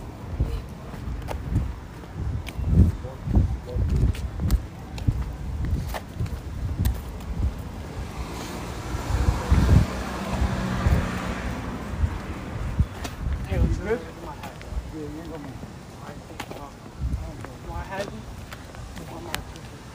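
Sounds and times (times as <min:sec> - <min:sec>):
heavy wind buffeting the microphone: 0:00.0 - 0:19.9
approaching car engine rumble: 0:06.2 - 0:13.8.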